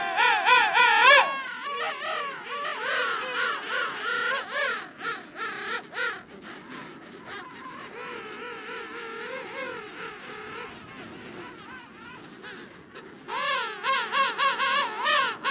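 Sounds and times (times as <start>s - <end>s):
loud close king penguin warbling calls in Antarctica: 0.0s - 4.4s
king penguin colony chorus in Antarctica: 0.0s - 15.4s.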